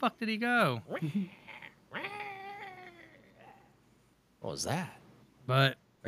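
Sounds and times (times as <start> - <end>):
speech: 0.0 - 2.2, 4.4 - 6.0
cat yowling: 1.3 - 3.7.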